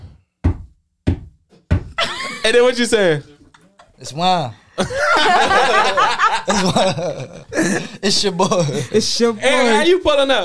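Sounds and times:
firm knocking on a door: 0.4s - 2.0s
laughter: 2.0s - 10.0s
speech: 2.4s - 3.3s, 4.0s - 10.4s.

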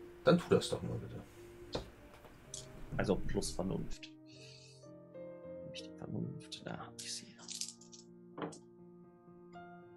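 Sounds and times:
speech: 0.2s - 1.4s, 3.0s - 4.2s, 5.8s - 7.5s
pair of dice rattling across a hard surface: 7.4s - 8.0s.

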